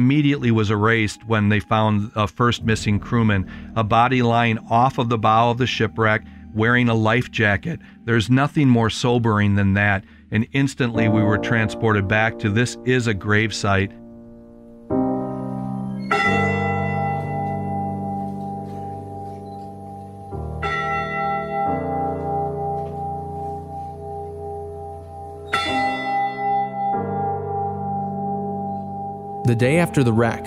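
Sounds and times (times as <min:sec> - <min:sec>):
church bell tolling: 0:00.0 - 0:09.9, 0:10.8 - 0:30.4
speech: 0:00.0 - 0:14.0, 0:29.5 - 0:30.4.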